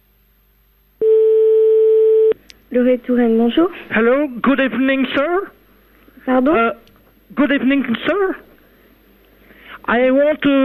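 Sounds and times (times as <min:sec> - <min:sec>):
telephone ringback tone of a call placed to a hotel: 0:01.0 - 0:02.4
speech: 0:02.7 - 0:05.6, 0:06.3 - 0:08.5, 0:09.8 - 0:10.6.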